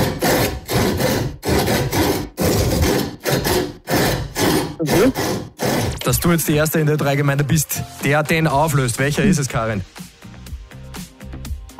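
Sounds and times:
saw cutting through wood in a song-like rhythm: 0:00.0 - 0:06.8
speech: 0:04.9 - 0:05.4, 0:06.1 - 0:10.0.

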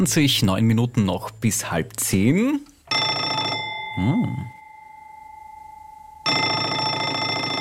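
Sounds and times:
speech: 0:00.0 - 0:02.7, 0:04.0 - 0:04.5
telephone ringing: 0:02.9 - 0:07.5.

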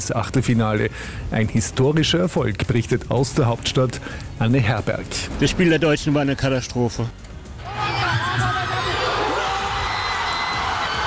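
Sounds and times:
speech: 0:00.0 - 0:07.2
football fans shouting and whooping: 0:07.6 - 0:11.0
huge crowd of football fans cheering a goal at a fan zone: 0:07.6 - 0:11.0.

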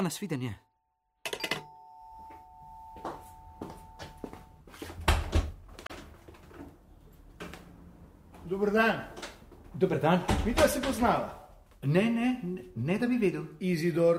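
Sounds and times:
speech: 0:00.0 - 0:00.6, 0:08.5 - 0:09.1, 0:09.8 - 0:14.1
electric doorbell ringing: 0:01.2 - 0:04.7.

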